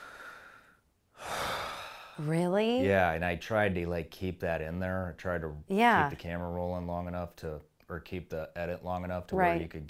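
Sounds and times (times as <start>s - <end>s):
person imitating a breathy exhale: 0.0s - 2.2s
speech: 2.2s - 9.8s.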